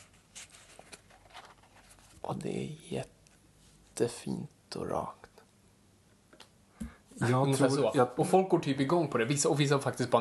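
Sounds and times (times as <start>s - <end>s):
sheet of paper being folded: 0.0s - 2.3s
speech: 2.3s - 3.2s, 4.0s - 5.3s, 7.2s - 10.1s.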